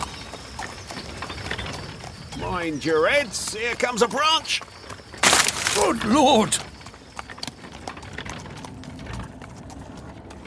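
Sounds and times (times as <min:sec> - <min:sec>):
carriage wheels rumbling in woods: 0:00.0 - 0:10.4
horse hooves clopping in woods: 0:00.0 - 0:10.4
carriage fittings rattling and creaking: 0:01.1 - 0:09.4
speech: 0:02.4 - 0:04.7, 0:05.8 - 0:06.7.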